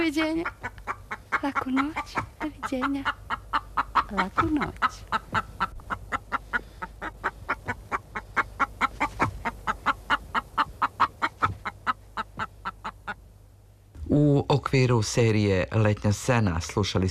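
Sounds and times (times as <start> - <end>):
speech: 0.0 - 0.8, 1.4 - 3.2, 4.1 - 5.2, 14.2 - 17.0
hen clucking: 0.0 - 13.4
low hum: 0.0 - 17.0.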